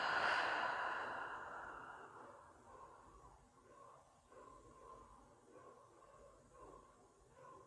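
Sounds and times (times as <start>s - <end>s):
slow breathing in through nose, out through mouth: 0.0s - 2.6s.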